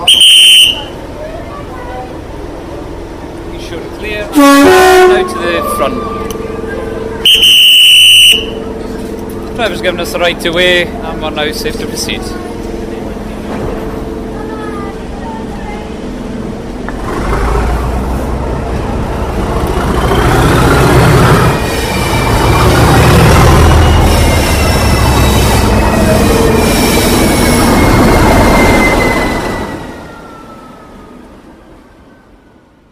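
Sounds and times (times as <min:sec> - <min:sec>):
locomotive-hauled passenger train engine pulling away: 0:00.0 - 0:32.9
speech: 0:05.4 - 0:06.2, 0:09.6 - 0:12.5
train wheels squealing: 0:19.4 - 0:30.4.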